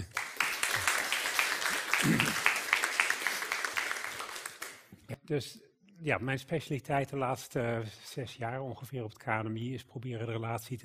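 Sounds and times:
audience applauding to welcome a speaker: 0.0s - 4.9s
speech: 5.3s - 10.8s.

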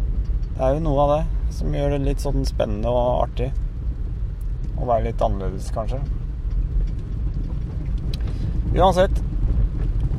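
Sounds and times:
speech: 0.6s - 3.6s, 4.8s - 6.2s, 8.7s - 9.2s
car driving over a washboard gravel road: 3.8s - 10.1s.

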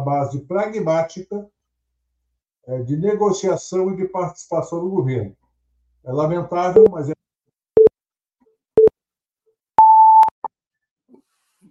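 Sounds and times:
speech: 0.0s - 1.6s, 2.6s - 5.4s, 6.0s - 7.2s
speaking-time timer beeping: 9.8s - 10.3s.

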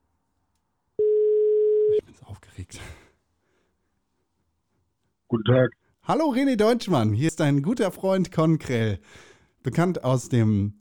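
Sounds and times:
telephone ringing tone while calling: 1.0s - 2.0s
speech: 1.9s - 3.0s, 5.4s - 10.7s.

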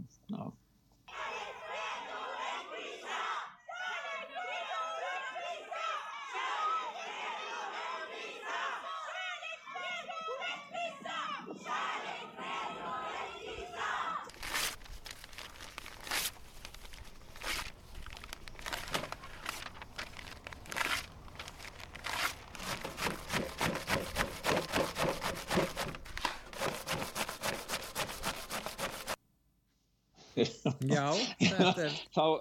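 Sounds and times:
speech: 0.1s - 0.6s, 30.8s - 32.4s
crowd of women on a protest march chanting and shouting: 1.1s - 14.3s
scattered voices: 4.2s - 14.3s, 30.8s - 32.4s
crackling rustling noise: 14.3s - 29.2s
file rasping against a Quran in Gothenburg: 22.0s - 29.2s
laughter: 30.3s - 32.4s.

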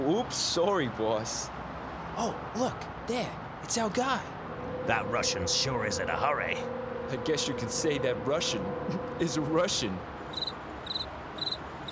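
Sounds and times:
speech: 0.2s - 1.6s, 2.2s - 10.5s
cricket chirping: 10.3s - 11.8s.

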